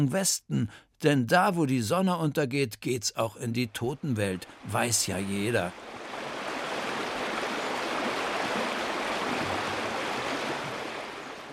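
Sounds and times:
speech: 0.0 - 6.0
rushing river water: 3.9 - 11.5.

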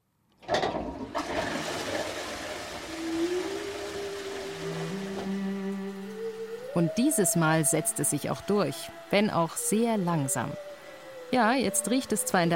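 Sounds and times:
toilet flushing with a rush of water: 0.4 - 8.8
toilet tank refilling with a gurgling swirl: 0.5 - 6.8
whistling tones from the pipes: 2.2 - 12.5
speech: 6.8 - 10.7, 11.3 - 12.5.

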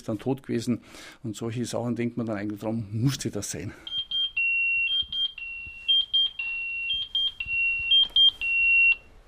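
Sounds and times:
speech: 0.0 - 4.0
firefighter's pager alarm beeping: 3.9 - 9.1.

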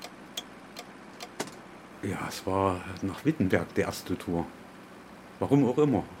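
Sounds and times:
car turn signal ticking: 0.0 - 1.4
speech: 2.0 - 4.6, 5.4 - 6.1.

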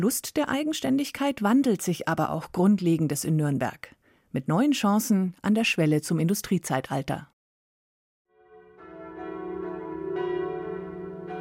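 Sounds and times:
speech: 0.0 - 7.3
church bells in Nuremberg ringing in overlapping peals: 8.4 - 11.3.

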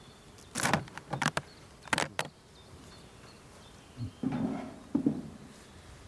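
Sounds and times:
honeybees swarming in an open hive: 0.0 - 6.0
sharp knocks and scrapes: 4.2 - 5.4.

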